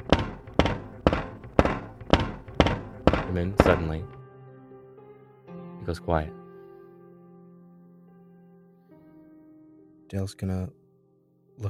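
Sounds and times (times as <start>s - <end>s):
something banging against a door: 0.0s - 4.1s
speech: 3.3s - 4.2s, 5.8s - 6.4s, 10.1s - 10.8s.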